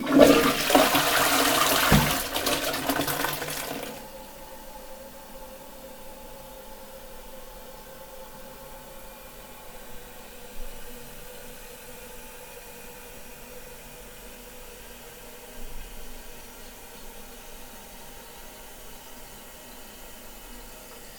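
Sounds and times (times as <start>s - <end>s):
toilet flushing: 0.0s - 4.2s.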